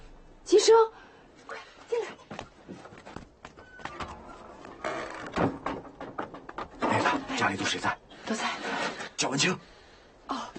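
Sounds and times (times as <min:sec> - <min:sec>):
speech: 0:00.7 - 0:01.0, 0:07.5 - 0:08.5, 0:09.2 - 0:09.8
wooden clunks and knocks of a door being opened: 0:02.3 - 0:07.4
door opened with a scraping, rattling swing: 0:03.5 - 0:07.2.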